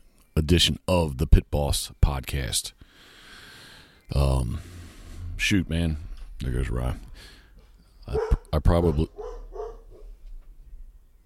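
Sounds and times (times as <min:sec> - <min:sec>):
speech: 0:00.4 - 0:03.1, 0:04.1 - 0:04.8, 0:05.4 - 0:07.4, 0:08.0 - 0:09.3
dog barking: 0:08.1 - 0:10.2.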